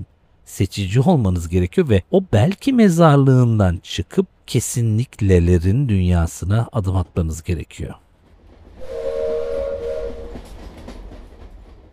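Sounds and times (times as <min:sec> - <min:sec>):
speech: 0:00.5 - 0:08.0
rumble and rattle of a moving train nearing İzmit heading toward Eskişehir: 0:07.0 - 0:11.9
train whistle on moving train: 0:08.8 - 0:10.6.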